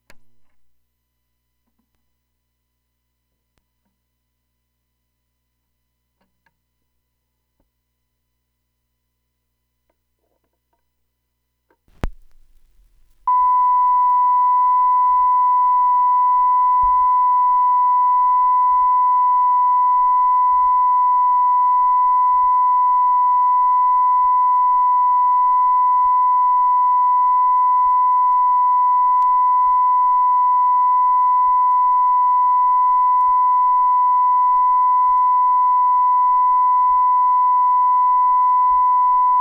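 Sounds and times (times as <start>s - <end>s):
1kHz reference tone from an Audio-Technica AT-LP2D-USB turntable: 12.0s - 39.3s.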